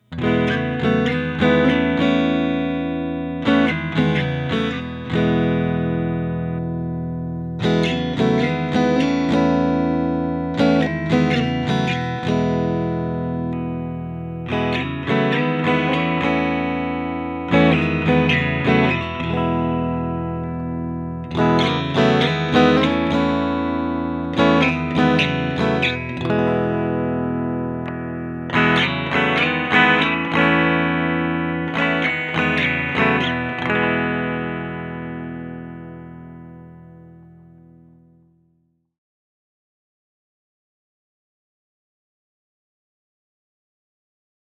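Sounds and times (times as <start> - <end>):
clean electric guitar strumming through pickups: 0.0 - 38.3.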